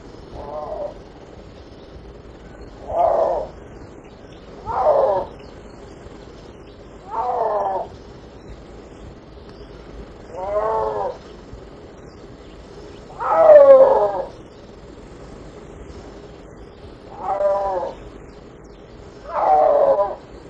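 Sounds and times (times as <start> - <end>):
Uncia uncia snow leopard main call: 0.3 - 1.0, 2.4 - 3.6, 4.6 - 5.4, 7.0 - 8.0, 10.3 - 11.3, 13.0 - 14.4, 17.1 - 18.1, 19.2 - 20.4.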